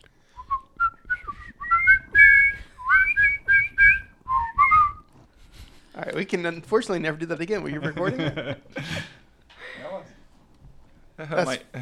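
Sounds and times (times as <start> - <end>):
person whistling a bouncy melody: 0.3 - 5.1
speech: 6.1 - 9.1, 11.3 - 11.8
laughter: 7.6 - 9.9.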